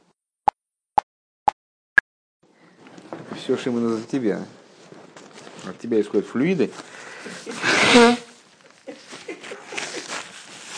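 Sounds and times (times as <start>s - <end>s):
speech: 3.4s - 4.6s, 5.6s - 8.2s
loud breathy sneeze: 7.5s - 8.3s.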